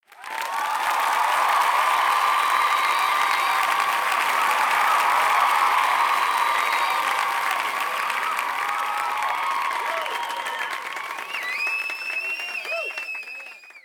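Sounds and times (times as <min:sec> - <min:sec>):
crowd cheering: 0:00.0 - 0:13.8.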